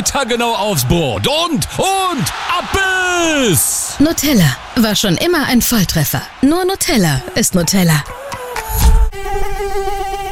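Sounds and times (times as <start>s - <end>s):
speech: 0.1s - 8.2s
mosquito buzzing: 8.0s - 10.3s.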